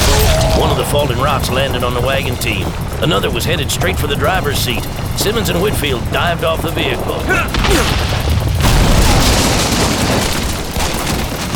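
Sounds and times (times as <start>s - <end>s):
gunfire from riders ambushing a wagon on a rocky trail: 0.0s - 11.5s
speech: 0.9s - 8.2s.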